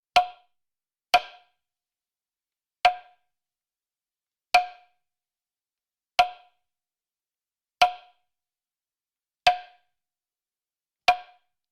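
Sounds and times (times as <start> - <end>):
woodblock being hit: 0.2 - 0.5, 2.9 - 3.2, 7.8 - 8.2, 9.5 - 9.8, 11.1 - 11.5.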